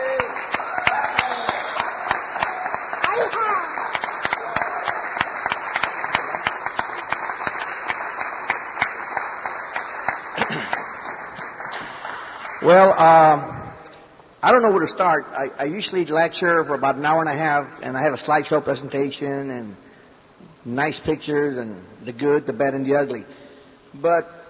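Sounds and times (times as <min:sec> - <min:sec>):
crowd applauding: 0:00.0 - 0:13.7
speech: 0:12.7 - 0:13.5, 0:14.4 - 0:19.8, 0:20.6 - 0:24.3.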